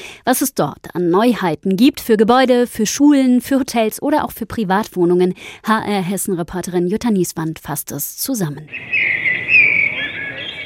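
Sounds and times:
speech: 0:00.2 - 0:09.3
birdsong played from a small loudspeaker: 0:08.7 - 0:10.6.

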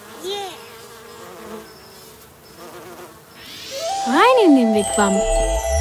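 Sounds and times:
bee buzzing in flight: 0:00.0 - 0:04.6
speech: 0:04.1 - 0:05.7.

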